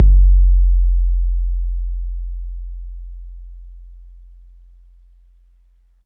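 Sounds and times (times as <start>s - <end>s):
808 bass drum on MPC60 in F: 0.0s - 2.2s.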